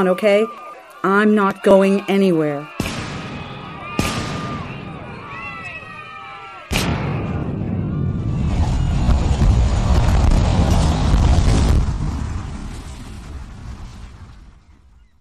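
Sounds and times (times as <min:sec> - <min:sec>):
speech: 0:00.0 - 0:02.8
bomb explosion sound effect in a drama: 0:02.8 - 0:06.0, 0:06.7 - 0:15.0.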